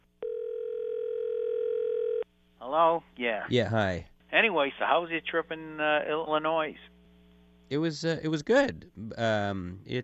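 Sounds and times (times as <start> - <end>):
telephone dial tone: 0.2 - 2.2
speech: 2.6 - 7.0, 7.7 - 10.0.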